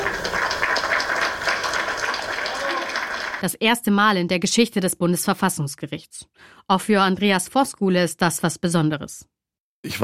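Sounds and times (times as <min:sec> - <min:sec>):
audience applause in a courtroom: 0:00.0 - 0:03.4
speech: 0:03.4 - 0:10.0.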